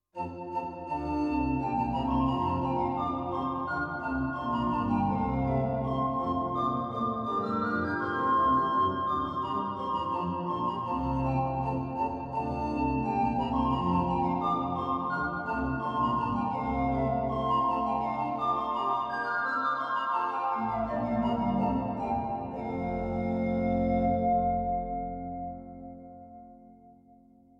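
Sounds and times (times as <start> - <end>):
digital organ pan flute stop solo: 0.2 - 26.0.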